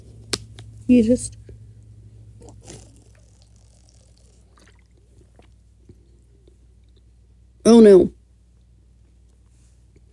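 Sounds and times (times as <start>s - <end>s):
speech: 0.9s - 1.4s, 7.8s - 8.2s
quiet sipping of drinking water: 2.4s - 6.6s
water being poured with soft splashing: 3.0s - 5.5s.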